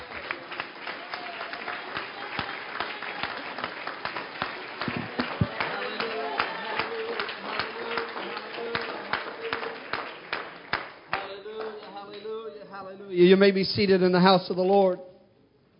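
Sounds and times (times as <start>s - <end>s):
crowd clapping: 0.0s - 12.4s
speech: 13.2s - 15.1s.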